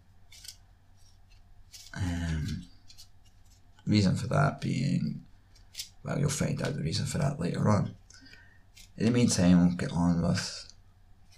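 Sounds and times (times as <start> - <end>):
playing cards being shuffled: 0.3 - 3.9, 5.6 - 7.0, 8.3 - 9.3
speech: 3.9 - 5.3, 6.0 - 8.0, 9.0 - 10.7.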